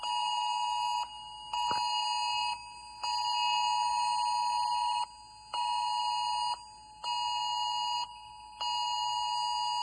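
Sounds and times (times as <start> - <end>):
shrill emergency alert tone from a mobile phone: 0.0 - 9.8.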